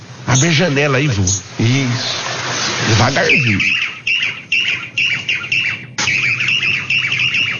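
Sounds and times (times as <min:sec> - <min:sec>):
speech: 0:00.4 - 0:04.0
small bird calling near a window: 0:03.2 - 0:07.5.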